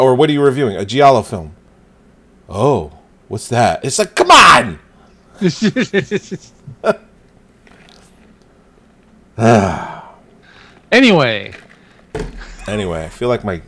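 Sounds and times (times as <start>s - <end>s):
speech: 0.0s - 1.6s, 2.5s - 4.8s, 5.4s - 7.1s, 9.4s - 10.0s, 10.9s - 11.6s, 12.2s - 13.6s
laughter: 5.4s - 7.1s
person taking short voiced gasps: 9.4s - 10.8s.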